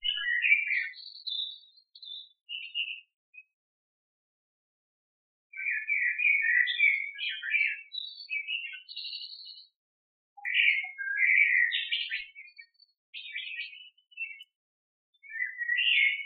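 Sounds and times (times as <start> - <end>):
bird twittering: 0.0 - 3.1, 5.5 - 9.7, 10.4 - 14.5, 15.2 - 16.2.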